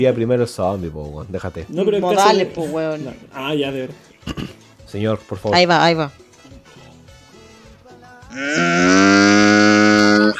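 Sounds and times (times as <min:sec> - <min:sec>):
speech: 0:00.0 - 0:06.2, 0:08.4 - 0:09.1
person imitating cow moo: 0:08.2 - 0:10.3.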